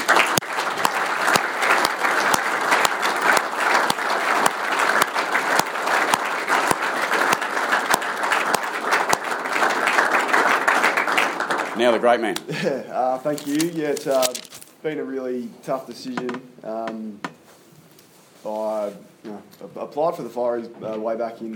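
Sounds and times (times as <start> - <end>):
sizable crowd applauding: 0.0 - 12.2
speech: 11.8 - 17.3, 18.4 - 21.5.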